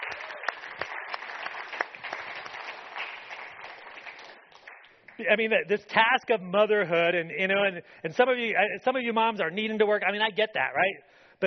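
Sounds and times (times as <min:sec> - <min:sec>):
audience applause: 0:00.0 - 0:05.3
speech: 0:05.2 - 0:11.4.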